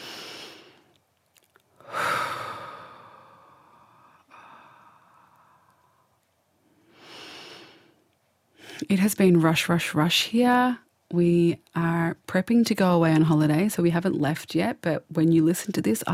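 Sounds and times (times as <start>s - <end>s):
slow deep breathing: 1.8s - 8.8s
speech: 8.8s - 16.1s.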